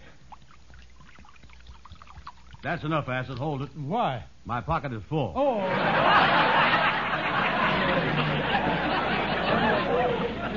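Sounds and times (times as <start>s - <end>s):
liquid poured from a jug: 0.0s - 3.6s
speech: 2.6s - 6.6s
laughter: 5.6s - 10.5s.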